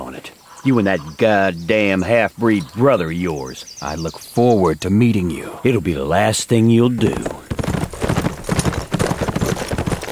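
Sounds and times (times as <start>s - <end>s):
speech: 0.6s - 7.5s
horse hooves clip-clopping as the horse is walked: 6.5s - 10.1s.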